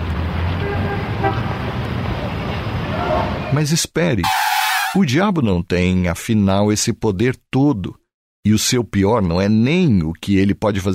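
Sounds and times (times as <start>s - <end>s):
busy city traffic rumbling: 0.0s - 5.1s
car horns honking: 0.6s - 1.6s, 4.2s - 5.0s
speech: 3.5s - 10.9s.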